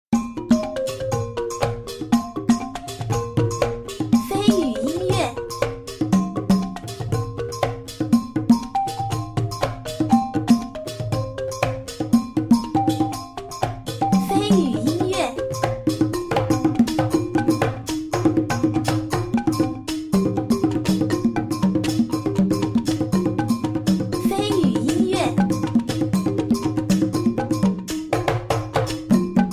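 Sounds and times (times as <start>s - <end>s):
tribal music: 0.2s - 29.5s.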